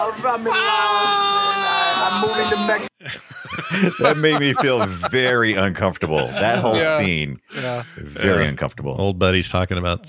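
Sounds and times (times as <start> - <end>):
speech: 0.1 - 1.4, 2.1 - 10.0
laughter: 2.2 - 8.5
man yelling while walking: 4.0 - 5.4, 6.2 - 8.5.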